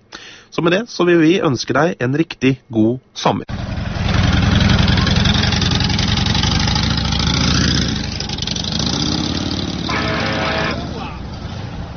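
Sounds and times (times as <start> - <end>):
speech: 0.6 - 3.7
motorcycle engine running: 3.5 - 11.1.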